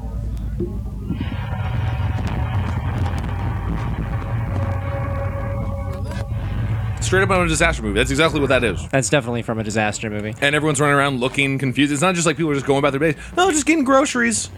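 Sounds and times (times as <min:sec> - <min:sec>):
heavy constant low rumble: 0:00.0 - 0:14.5
speech: 0:00.6 - 0:01.2, 0:07.1 - 0:14.5
mysterious trumpet-like blaring tones from the sky in a town in Canada: 0:01.1 - 0:09.2.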